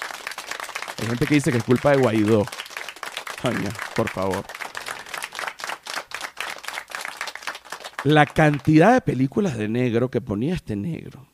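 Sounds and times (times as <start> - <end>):
crowd applauding: 0.0 - 9.0
speech: 1.0 - 2.6, 3.4 - 4.6, 8.0 - 11.3.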